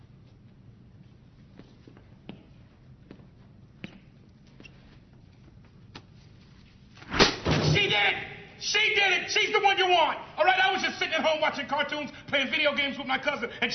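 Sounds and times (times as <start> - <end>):
door slamming loudly as people enter: 7.2 - 8.1
speech: 9.4 - 13.7.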